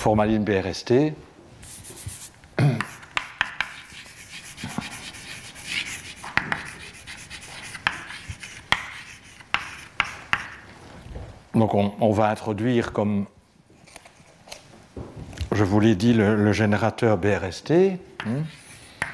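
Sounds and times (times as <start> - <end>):
speech: 0.0 - 1.3, 11.6 - 13.4, 15.6 - 18.6
writing on a board during a physics lecture: 1.6 - 10.7, 18.2 - 19.1.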